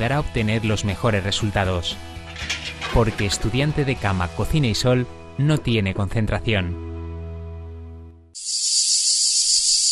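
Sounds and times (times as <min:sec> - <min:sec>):
speech: 0:00.0 - 0:06.9
cicada buzzing: 0:08.4 - 0:09.9.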